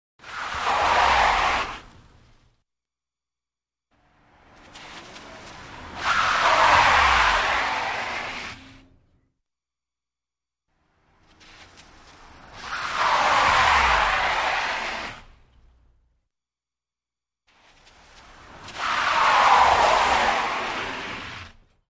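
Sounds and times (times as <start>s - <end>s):
wet tires skidding on smooth wet surface: 0.2s - 2.6s, 4.0s - 8.8s, 11.0s - 15.5s, 17.6s - 21.8s.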